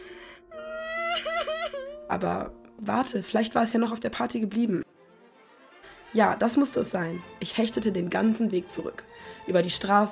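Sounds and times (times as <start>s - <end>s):
high-pitched voice crying and whimpering: 0.5s - 2.1s
speech: 2.1s - 4.8s, 6.1s - 10.1s.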